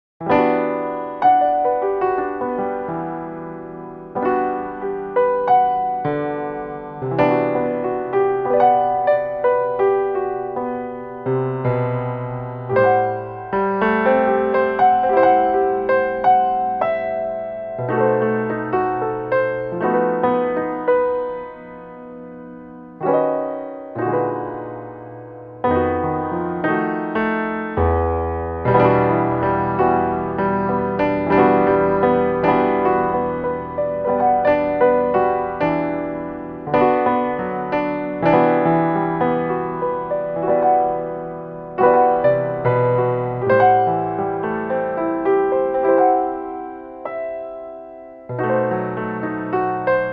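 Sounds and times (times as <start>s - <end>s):
solo piano: 0.2s - 50.1s.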